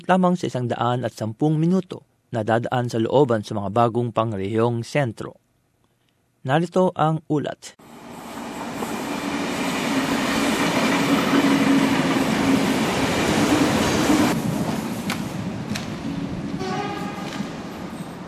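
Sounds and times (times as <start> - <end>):
speech: 0.0 - 5.4, 6.4 - 7.9
train rumbling along the rails: 7.8 - 18.2.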